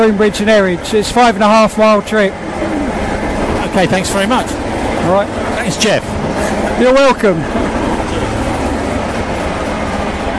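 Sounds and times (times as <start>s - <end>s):
speech: 0.0s - 2.8s, 3.8s - 7.6s
heritage steam train running along the track: 0.0s - 10.3s.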